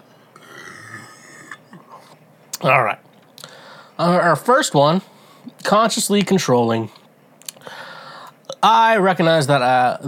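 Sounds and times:
burp: 0.4s - 1.8s
speech: 2.6s - 3.0s, 4.0s - 7.0s, 8.6s - 10.0s.

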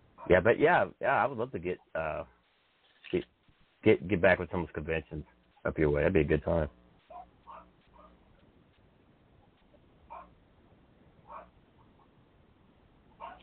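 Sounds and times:
steady low hum: 0.0s - 13.4s
speech: 0.3s - 2.4s, 3.1s - 6.8s
Great Dane puppy yipping and barking while playing with other dogs: 7.1s - 8.2s, 13.2s - 13.4s.

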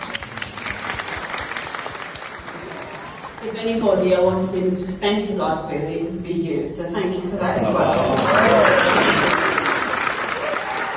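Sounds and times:
round of applause at a wedding ceremony: 0.0s - 4.0s, 7.6s - 10.9s
speech: 3.4s - 9.4s.

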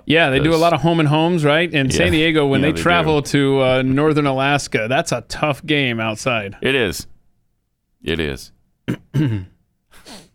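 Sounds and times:
speech: 0.1s - 7.1s, 8.0s - 10.2s
person clearing throat with a short rough grunt: 8.8s - 9.6s
person sniffing: 9.9s - 10.3s.

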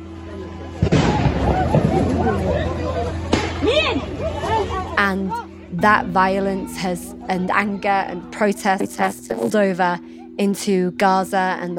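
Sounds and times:
crowd shouting and murmuring: 0.0s - 10.4s
heavy booming airstrike explosions hitting buildings: 0.8s - 2.6s
speech: 5.0s - 11.7s.

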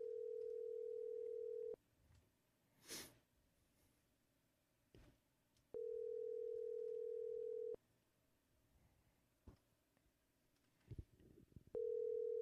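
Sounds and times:
outgoing phone call ringback tone purring: 0.0s - 1.8s, 5.8s - 7.8s, 11.8s - 12.4s.

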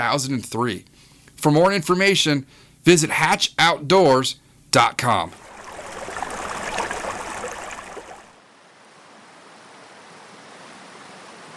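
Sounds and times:
speech: 0.0s - 5.4s
flowing water of a river rushing on a morning: 5.3s - 8.4s.

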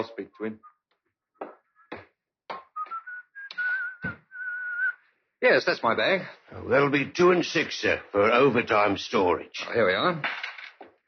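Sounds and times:
speech: 0.0s - 0.7s, 5.4s - 10.4s
man whistling a wandering tune: 1.6s - 2.0s, 2.6s - 5.0s.

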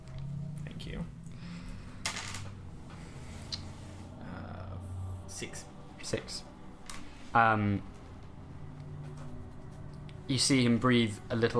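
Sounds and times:
low hum: 0.0s - 11.5s
dice rolling on a table: 2.0s - 2.6s
speech: 5.4s - 6.5s, 7.4s - 7.9s, 10.3s - 11.5s.

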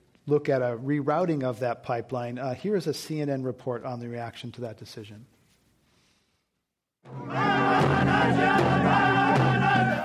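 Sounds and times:
speech: 0.3s - 5.4s
large crowd cheering and whooping: 7.1s - 10.0s.

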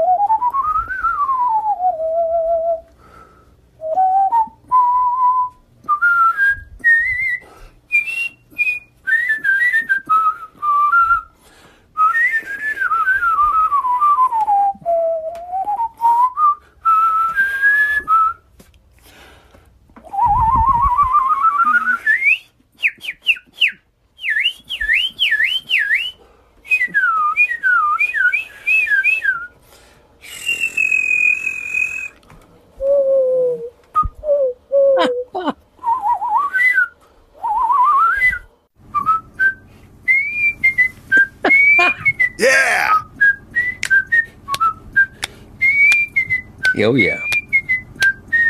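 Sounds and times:
person whistling melodic phrases with trills and slides: 0.0s - 3.0s, 3.8s - 11.3s, 12.0s - 18.4s, 20.1s - 29.6s, 30.2s - 32.2s, 32.8s - 48.4s
speech: 46.8s - 47.2s.

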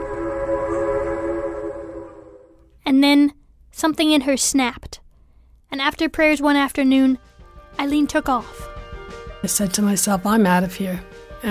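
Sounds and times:
train horn blowing: 0.0s - 2.6s
speech: 3.0s - 5.0s, 5.7s - 8.7s, 9.4s - 11.4s.

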